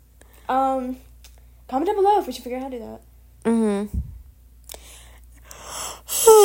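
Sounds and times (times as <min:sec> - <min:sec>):
speech: 0:00.5 - 0:01.1, 0:01.7 - 0:04.1
person yawning loudly: 0:05.7 - 0:06.4.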